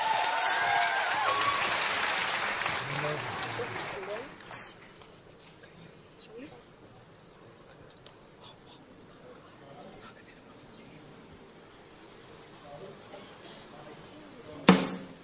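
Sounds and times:
audience applause: 0.0 - 4.9
faint voices murmuring: 2.8 - 14.7.

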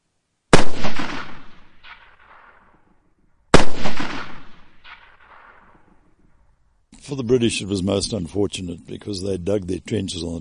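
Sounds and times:
Mauser rifle shots from entrenched riflemen on a hilltop battlefield: 0.5 - 2.9, 3.5 - 6.1
speech: 7.1 - 10.3.

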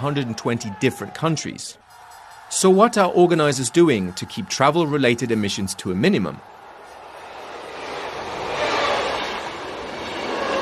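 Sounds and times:
speech: 0.0 - 1.9, 2.5 - 6.6
passenger train rolling along rails: 5.8 - 10.5.

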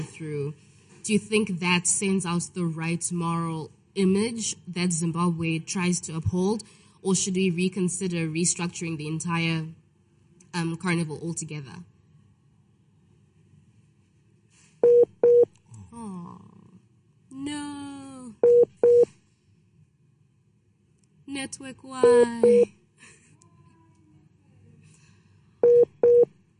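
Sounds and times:
speech: 0.0 - 9.8, 10.5 - 11.9, 17.3 - 17.8, 21.4 - 22.8
phone line beeps after a dropped call: 14.8 - 15.5, 22.0 - 22.6, 25.6 - 26.3.

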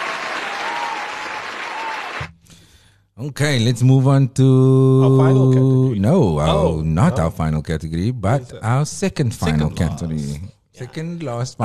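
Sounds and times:
crowd applause and cheering: 0.0 - 2.4
speech: 3.2 - 11.6.

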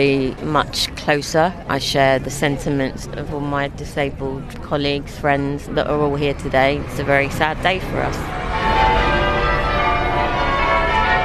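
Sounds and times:
speech: 0.0 - 8.4
church bells pealing: 5.3 - 11.2.

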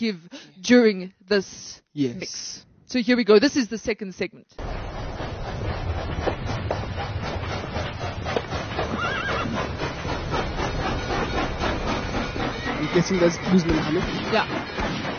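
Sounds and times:
speech: 0.0 - 4.7, 13.0 - 15.0
dense rumbling backdrop: 4.6 - 14.7
horse hooves clip-clopping: 4.6 - 15.1
horse whinnying: 8.9 - 9.6.

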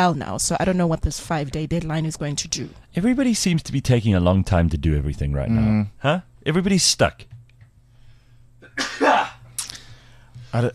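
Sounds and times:
speech: 0.0 - 7.3, 10.5 - 10.7
person sneezing: 8.6 - 9.9.

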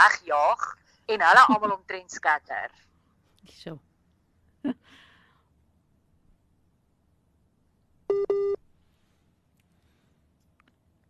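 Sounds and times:
speech: 0.0 - 3.9, 8.1 - 8.6
busy tone beeps of a dropped phone call: 8.1 - 8.6.

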